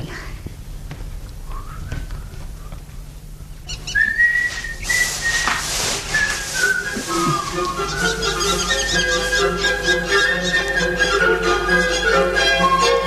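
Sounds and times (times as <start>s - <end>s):
person whistling a melodic tune on a vinyl record: 1.5s - 2.8s, 3.9s - 5.5s, 6.1s - 12.9s.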